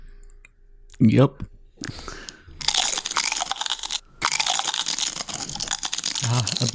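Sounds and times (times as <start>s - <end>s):
speech: 1.0s - 2.0s
recorded potato chip crunches played as musical notes on a keyboard: 2.6s - 6.7s.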